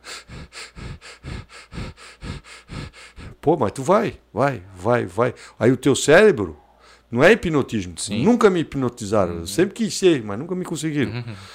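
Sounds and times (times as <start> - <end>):
rapid deep breathing in a holotropic breathing demonstration: 0.0 - 3.4, 6.6 - 7.1, 11.3 - 11.5
speech: 3.4 - 11.5.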